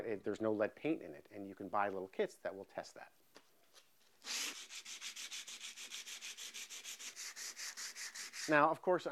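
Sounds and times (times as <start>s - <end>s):
speech: 0.1s - 3.2s, 8.5s - 9.1s
coarse 60-grit sandpaper rasping over wood by hand: 4.2s - 8.7s.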